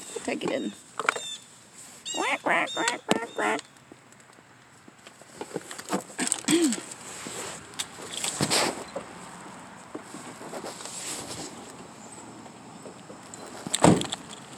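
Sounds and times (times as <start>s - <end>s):
rustling: 0.0s - 3.6s, 5.0s - 9.1s, 9.9s - 11.8s
outdoor hiss: 0.0s - 14.5s
speech: 0.2s - 0.9s, 2.2s - 3.7s
duck quacking: 2.1s - 3.6s.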